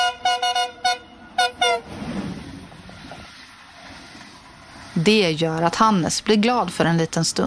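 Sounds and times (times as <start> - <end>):
train horn sounded by the train driver: 0.0 - 2.0
low rumble of the passing train: 0.0 - 7.4
speech: 5.0 - 7.4.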